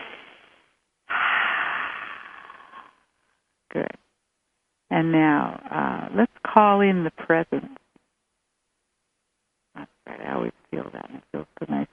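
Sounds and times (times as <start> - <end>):
big deep breath during a guided visualization: 1.1 - 3.1
speech: 3.7 - 4.0, 5.0 - 7.8.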